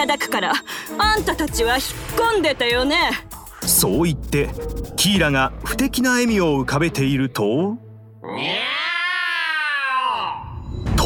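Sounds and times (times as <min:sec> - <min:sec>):
speech: 0:00.0 - 0:08.6
cat yowling: 0:08.2 - 0:10.5.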